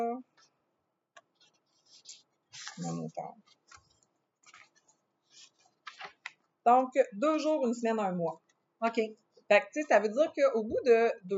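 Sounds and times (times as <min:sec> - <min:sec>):
rustling and shuffling of paper sheets: 0:01.3 - 0:06.4
speech: 0:02.8 - 0:03.6, 0:06.6 - 0:11.3.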